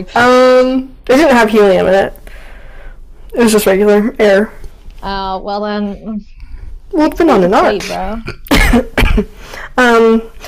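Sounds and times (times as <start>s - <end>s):
speech: 0.0s - 2.2s, 3.3s - 6.3s, 6.9s - 10.4s
raspy voiced breaths: 2.2s - 3.2s
short harsh coughs: 8.2s - 9.7s.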